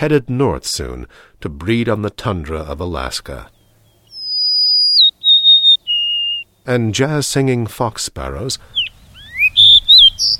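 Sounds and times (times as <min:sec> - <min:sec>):
speech: 0:00.0 - 0:03.6, 0:06.6 - 0:08.8, 0:10.2 - 0:10.3
Golden-crowned Sparrow plaintive whistled song: 0:03.6 - 0:06.5, 0:08.7 - 0:10.3.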